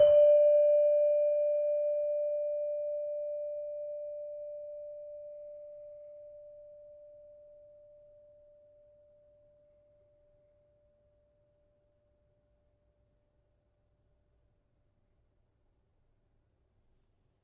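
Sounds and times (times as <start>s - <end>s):
tuned gamelan saron: 0.0s - 8.7s.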